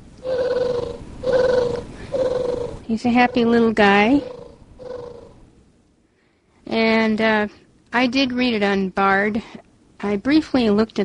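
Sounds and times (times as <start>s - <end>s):
electronic toy purring: 0.2s - 5.4s
speech: 2.9s - 4.3s, 7.1s - 11.0s.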